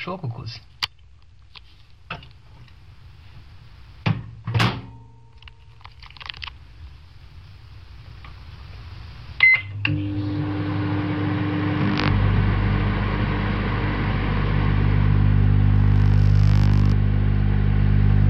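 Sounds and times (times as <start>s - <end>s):
speech: 0.0s - 0.7s
microwave oven humming: 9.4s - 18.2s.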